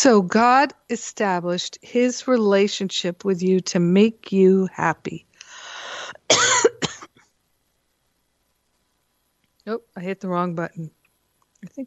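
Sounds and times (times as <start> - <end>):
speech: 0.0 - 5.3, 6.2 - 6.8, 9.6 - 11.0, 11.6 - 11.8
breathy rasp: 5.4 - 6.2
loud cough right into the microphone: 6.3 - 7.2.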